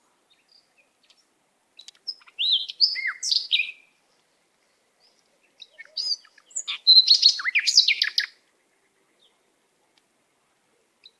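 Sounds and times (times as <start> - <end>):
canary singing: 1.8 - 3.8, 5.5 - 8.4.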